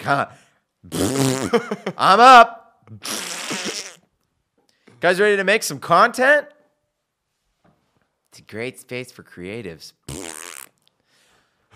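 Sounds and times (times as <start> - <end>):
speech: 0.0 - 3.6, 5.0 - 6.5, 8.4 - 10.3
loud brassy fart sound effect: 0.9 - 1.5, 3.0 - 4.0, 10.1 - 10.7.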